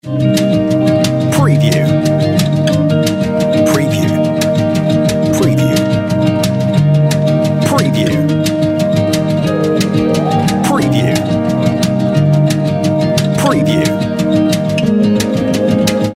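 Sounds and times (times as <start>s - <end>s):
on hold music: 0.0s - 16.1s.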